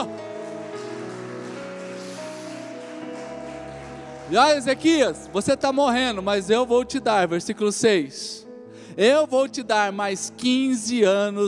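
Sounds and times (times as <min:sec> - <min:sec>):
audience applauding loudly: 0:00.0 - 0:06.8
sustained keyboard chords: 0:00.0 - 0:10.4
speech: 0:04.3 - 0:08.4, 0:09.0 - 0:11.4.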